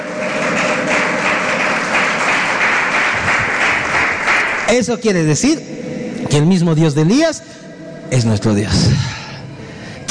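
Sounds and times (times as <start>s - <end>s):
large crowd applauding: 0.0s - 5.0s
speech: 4.7s - 9.2s.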